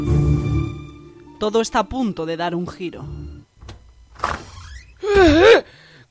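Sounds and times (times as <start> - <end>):
speech: 1.4 - 3.2, 5.2 - 6.0
heavy security door sliding open with a mechanical whoosh and whir: 3.6 - 5.0.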